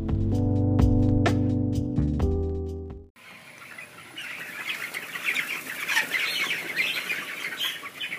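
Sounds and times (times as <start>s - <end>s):
tonal music: 0.0s - 3.1s
thousands of broiler chickens clucking and chirping in a barn: 3.2s - 8.1s.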